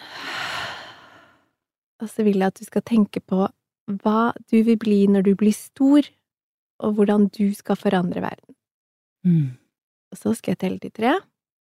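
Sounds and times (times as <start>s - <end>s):
deep breath in through nose and out mouth: 0.0s - 1.5s
speech: 2.0s - 6.2s, 6.8s - 8.6s, 9.2s - 11.3s.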